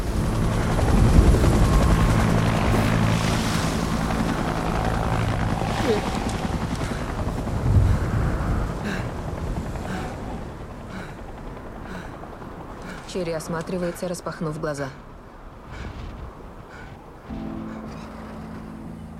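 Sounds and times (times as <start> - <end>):
helicopter taking off at a military setting: 0.0 - 8.2
gusty wind-like noise from rotor wash: 0.0 - 19.1
speech: 13.2 - 15.1.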